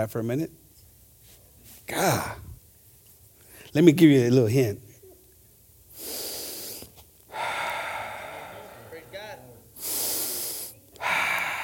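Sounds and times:
speech: 0.0s - 0.6s, 1.9s - 2.5s, 3.7s - 4.9s
deep audible breathing: 5.9s - 11.6s.

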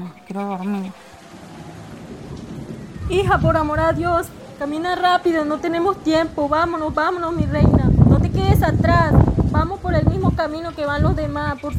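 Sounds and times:
steady rain pouring: 0.0s - 11.7s
speech: 0.3s - 1.4s, 3.1s - 11.7s.

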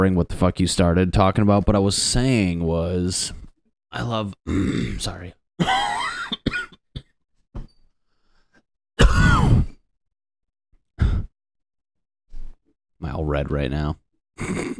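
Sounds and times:
speech: 0.0s - 5.9s, 13.0s - 14.7s
person coughing in a harsh hacking fit: 5.6s - 7.1s, 9.0s - 9.8s.

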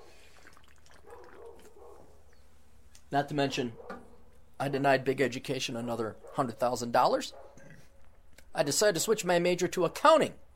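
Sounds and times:
faint fizzy crackle of soda water: 0.0s - 1.8s
soda water trickling while someone drinks: 0.0s - 1.8s
speech: 3.1s - 3.9s, 4.6s - 7.4s, 8.6s - 10.4s.

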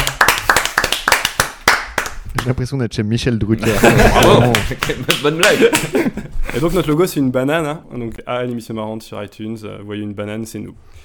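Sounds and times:
small group clapping by hand: 0.0s - 2.6s, 3.7s - 6.2s
speech: 2.4s - 11.0s
laughter: 3.6s - 6.8s.

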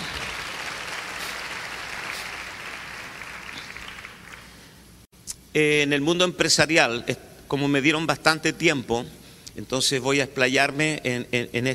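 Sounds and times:
audience applauding: 0.0s - 4.7s
speech: 5.5s - 11.7s.

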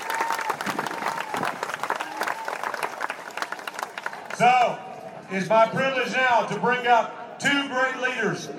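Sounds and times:
large enthusiastic crowd applauding at a voting-rights rally: 0.0s - 4.8s
speech: 4.4s - 8.5s.

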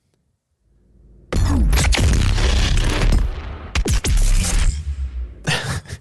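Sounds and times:
big sci-fi video game gun firing a roaring blast: 1.3s - 5.4s
heavy crashing impact of a video game projectile: 1.3s - 5.4s
trailing bursts of debris-like crackle: 1.4s - 4.9s.

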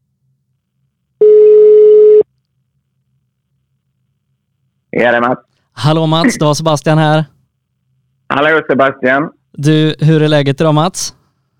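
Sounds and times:
telephone call tone while a phone call connects: 1.2s - 2.2s
speech: 4.9s - 7.3s, 8.4s - 11.2s.

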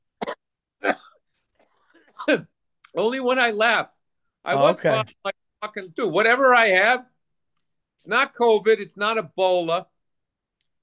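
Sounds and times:
person coughing with a lingering cough: 0.2s - 1.2s
throat clearing: 0.2s - 1.2s
speech: 2.3s - 7.1s, 8.0s - 9.9s.

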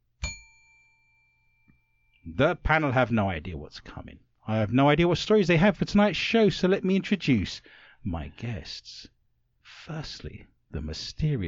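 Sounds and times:
bell strike: 0.2s - 2.1s
speech: 2.3s - 9.1s, 9.7s - 11.4s.

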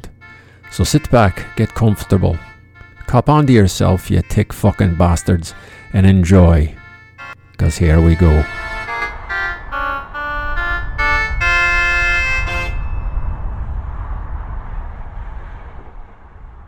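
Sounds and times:
car horns honking: 0.0s - 13.2s
road traffic rumble of passing vehicles: 0.0s - 16.6s
speech: 0.8s - 2.5s, 3.1s - 6.8s, 7.6s - 8.6s.

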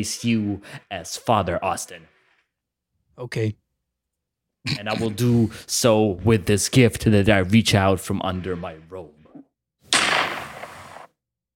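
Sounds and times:
speech: 0.0s - 2.1s, 3.2s - 3.6s, 4.6s - 9.2s
gunshot sound effect: 9.9s - 11.1s.

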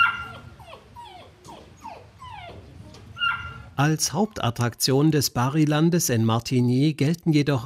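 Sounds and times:
St. Bernard dog whimpering: 0.0s - 3.8s
low rumble: 0.0s - 6.2s
speech: 3.8s - 7.6s.

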